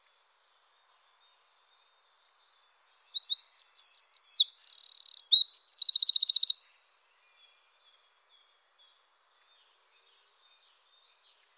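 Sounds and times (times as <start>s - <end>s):
Eurasian wren song trill: 2.2s - 6.9s.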